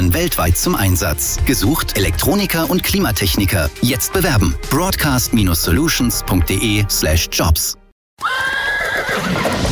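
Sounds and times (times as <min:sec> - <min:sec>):
speech: 0:00.1 - 0:08.3
horse neighing at an open-air stage show: 0:08.2 - 0:09.6.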